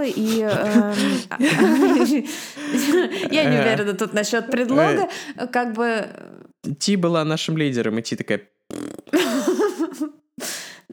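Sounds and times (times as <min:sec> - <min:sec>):
laughter: 0:00.0 - 0:03.9, 0:09.2 - 0:10.1
speech: 0:00.0 - 0:09.4
person blowing a wobbling vocal fart imitation: 0:08.7 - 0:09.4.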